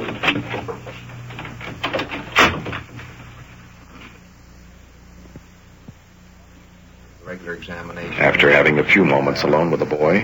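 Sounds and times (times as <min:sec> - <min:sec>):
door closing: 0:00.0 - 0:03.1
low steady room hum: 0:00.0 - 0:10.2
speech: 0:07.5 - 0:10.2.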